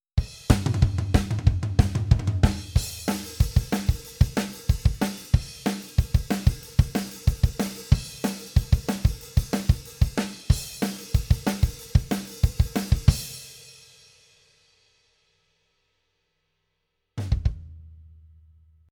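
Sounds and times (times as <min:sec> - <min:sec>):
dry drums: 0:00.2 - 0:13.4, 0:17.2 - 0:17.8.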